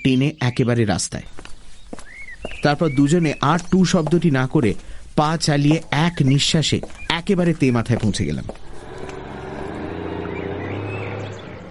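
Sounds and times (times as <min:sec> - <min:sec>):
speech: 0:00.1 - 0:01.5, 0:02.6 - 0:08.6
military lorry driving past: 0:08.6 - 0:11.6.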